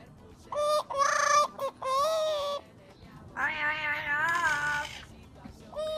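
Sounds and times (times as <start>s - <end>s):
parrot singing a familiar tune: 0.5s - 2.6s, 3.4s - 5.0s.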